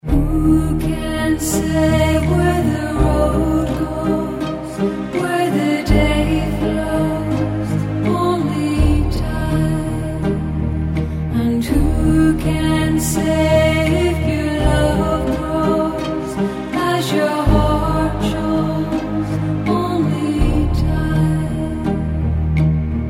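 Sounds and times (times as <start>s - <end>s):
songs: 0.0s - 23.0s.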